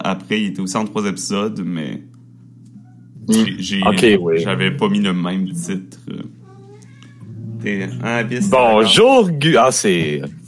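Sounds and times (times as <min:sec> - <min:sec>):
speech: 0:00.1 - 0:02.2, 0:03.3 - 0:06.4, 0:07.6 - 0:10.4
cat meowing: 0:06.5 - 0:07.6.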